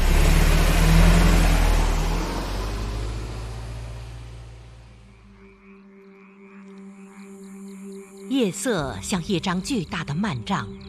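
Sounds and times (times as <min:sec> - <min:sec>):
car engine revving and driving off: 0:00.0 - 0:05.2
speech: 0:08.4 - 0:10.8.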